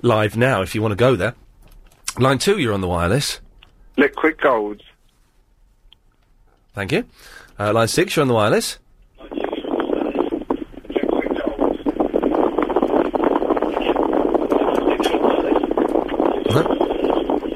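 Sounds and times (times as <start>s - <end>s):
speech: 0.0s - 1.4s, 2.2s - 3.4s, 4.0s - 4.9s, 6.8s - 9.4s, 16.5s - 16.8s
loud wind buffeting a phone microphone through a telephone line: 9.2s - 17.5s.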